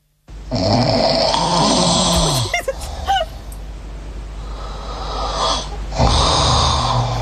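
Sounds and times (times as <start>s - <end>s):
loud raspy human snoring: 0.5s - 3.5s, 4.4s - 7.1s.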